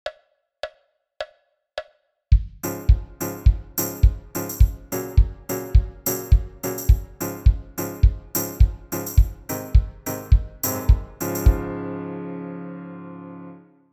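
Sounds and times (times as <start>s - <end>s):
drums with effects: 2.3s - 11.6s
piano with effects: 2.6s - 13.9s.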